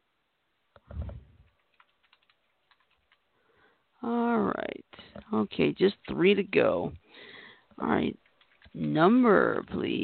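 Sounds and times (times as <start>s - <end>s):
typing on a computer keyboard during a word game: 1.4s - 3.2s, 8.2s - 8.9s
speech: 5.4s - 7.0s, 7.8s - 8.2s, 8.8s - 10.0s.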